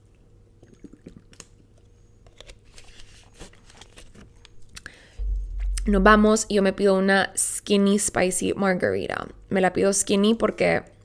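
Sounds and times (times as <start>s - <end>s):
person sipping water with soft slurps: 0.6s - 1.4s
swallowing: 0.6s - 1.4s
dull low thump as something is handled: 5.2s - 6.7s
speech: 5.8s - 10.9s.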